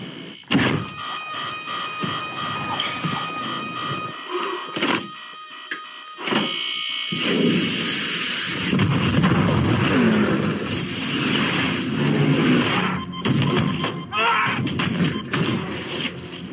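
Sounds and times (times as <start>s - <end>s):
several electronic alarms sounding: 0.0s - 9.2s, 10.4s - 16.5s
shrill high beep: 0.8s - 6.0s, 12.8s - 15.4s.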